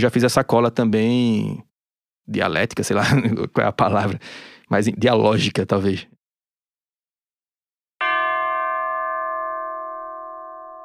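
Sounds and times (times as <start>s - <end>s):
speech: 0.0s - 1.7s, 2.3s - 6.2s
bell ringing at start of music track: 8.0s - 10.8s.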